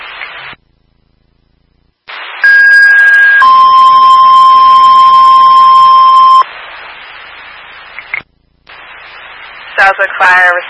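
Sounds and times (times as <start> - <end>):
hissing radio channel static: 0.0 - 0.7, 2.0 - 3.5, 5.0 - 10.6
fire dispatch alert tones: 2.4 - 6.4
speech: 9.9 - 10.6.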